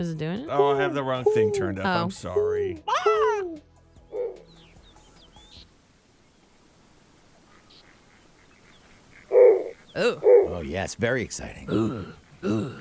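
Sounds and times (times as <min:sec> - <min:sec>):
speech: 0:00.0 - 0:03.2, 0:10.0 - 0:12.7
snowy owl giving harsh nasal calls: 0:00.5 - 0:05.7, 0:07.4 - 0:10.7.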